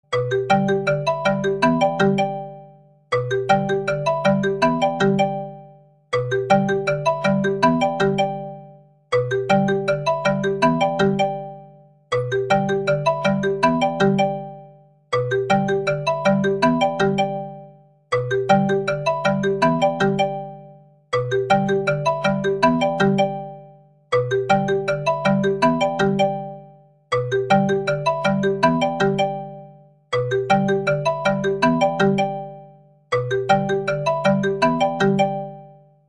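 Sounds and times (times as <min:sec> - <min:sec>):
marimba ringtone: 0:00.1 - 0:35.9.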